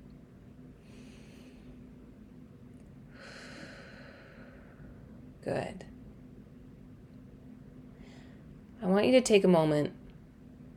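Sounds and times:
low hum: 0:00.0 - 0:10.7
deep breaths in: 0:00.8 - 0:01.8, 0:03.1 - 0:05.1, 0:07.9 - 0:08.5
speech: 0:05.4 - 0:05.9, 0:08.9 - 0:10.0.

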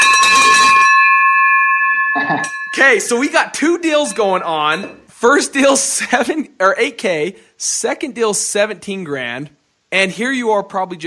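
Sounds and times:
victory bell ringing: 0:00.0 - 0:05.1
speech: 0:02.2 - 0:11.0.

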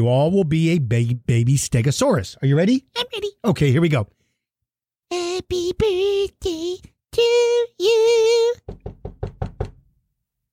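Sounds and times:
speech: 0:00.0 - 0:04.2, 0:05.1 - 0:09.0
knocking on a door: 0:08.6 - 0:10.0.

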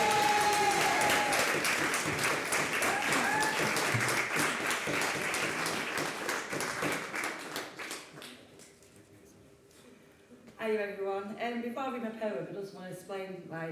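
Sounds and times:
crowd whooping and cheering: 0:00.0 - 0:01.7, 0:02.7 - 0:04.0
crowd applauding: 0:00.0 - 0:08.4
speech: 0:11.5 - 0:13.7.

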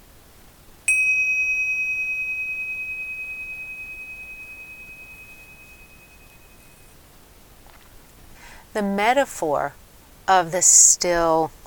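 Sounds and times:
meditation bell ringing: 0:00.9 - 0:07.0
speech: 0:08.8 - 0:11.6.

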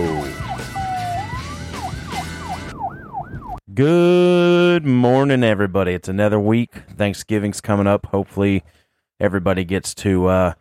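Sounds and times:
emergency vehicle siren wailing and whooping while passing by: 0:00.0 - 0:03.6
speech: 0:03.8 - 0:10.5.

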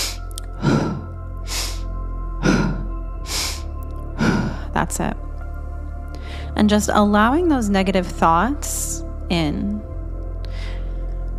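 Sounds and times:
deep breaths in through the nose and out through the mouth during a breathwork exercise: 0:00.0 - 0:04.8, 0:05.7 - 0:06.6, 0:10.3 - 0:11.3
speech: 0:04.8 - 0:05.3, 0:06.6 - 0:09.8.

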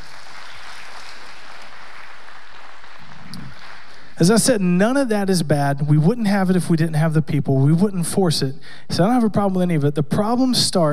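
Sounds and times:
audience applause: 0:00.0 - 0:04.2
speech: 0:04.2 - 0:10.9.

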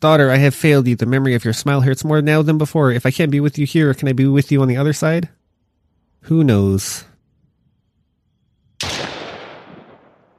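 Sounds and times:
speech: 0:00.0 - 0:05.4, 0:06.2 - 0:07.1
celebratory firework blast: 0:08.8 - 0:10.3.

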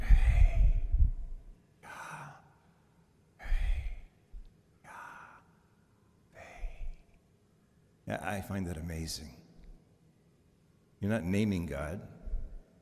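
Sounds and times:
slow deliberate breaths in a breathing exercise: 0:00.0 - 0:07.2
speech: 0:08.1 - 0:09.4, 0:11.0 - 0:12.2.

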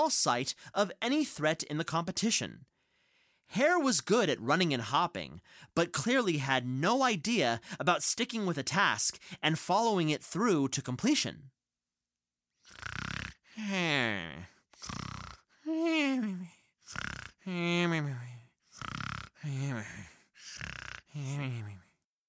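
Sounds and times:
speech: 0:00.0 - 0:02.7, 0:03.5 - 0:11.5, 0:13.6 - 0:21.8
person mimicking the snoring of a hare: 0:12.6 - 0:22.0.

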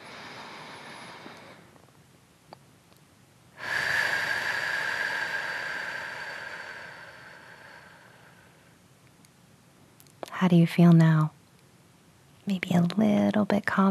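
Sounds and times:
slow deep breathing during a calming exercise after childbirth: 0:00.0 - 0:01.8, 0:03.6 - 0:08.8
speech: 0:10.4 - 0:11.4, 0:12.5 - 0:13.8.

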